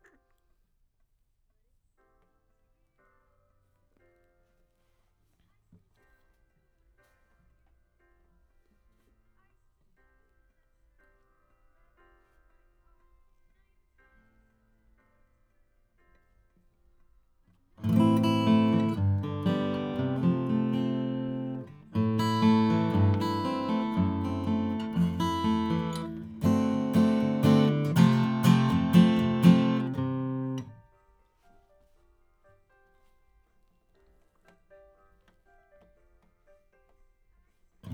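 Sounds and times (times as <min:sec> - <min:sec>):
acoustic guitar: 0:17.8 - 0:30.8.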